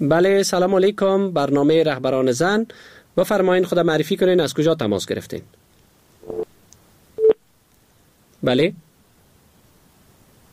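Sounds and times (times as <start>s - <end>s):
speech: 0.0s - 5.6s, 8.4s - 8.8s
telephone busy tone after a dropped call: 6.2s - 6.5s.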